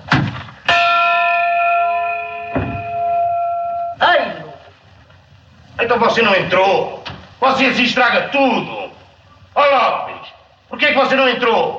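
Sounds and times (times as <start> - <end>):
large church tower bell striking one o'clock: 0.7 - 4.0
speech: 5.9 - 8.8, 10.7 - 11.7.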